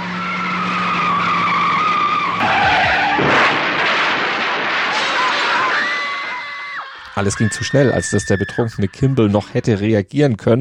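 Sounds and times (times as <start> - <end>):
Mazda RX-7 engine whining at about 120 km/h: 0.0 - 5.0
Mazda RX-7 tires squealing in a long harsh skid: 0.0 - 9.3
laughter: 7.0 - 10.0
speech: 7.2 - 10.5.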